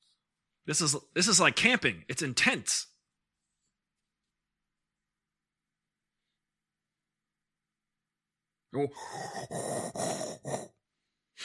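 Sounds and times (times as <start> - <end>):
speech: 0.7 - 2.9, 8.7 - 10.7
heavy breathing: 8.9 - 10.8.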